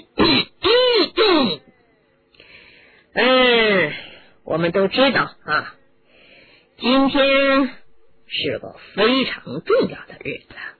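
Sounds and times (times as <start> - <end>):
man clearing his throat: 0.0 - 1.7
speech: 4.6 - 5.8, 6.8 - 10.7.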